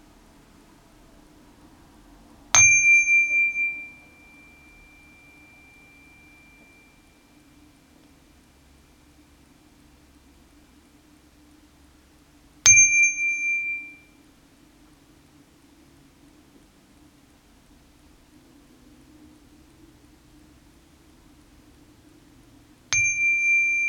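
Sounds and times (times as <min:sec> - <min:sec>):
meditation bell ringing during a breathing exercise: 0:02.6 - 0:08.1, 0:12.7 - 0:14.2, 0:23.0 - 0:23.8.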